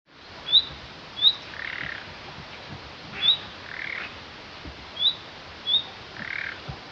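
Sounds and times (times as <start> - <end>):
background hiss: 0.1 - 6.8
common nightingale calling with thin high and rasping notes: 0.4 - 2.1, 3.1 - 4.2, 4.9 - 6.7.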